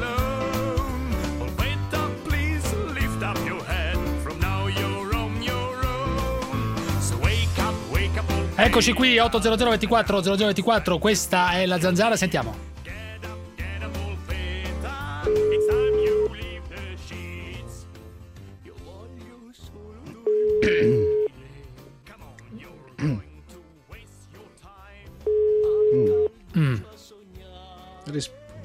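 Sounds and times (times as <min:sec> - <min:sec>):
music: 0:00.0 - 0:28.6
speech: 0:08.6 - 0:12.7
telephone ringback tone beeps: 0:15.3 - 0:16.3, 0:20.3 - 0:21.3, 0:25.3 - 0:26.3.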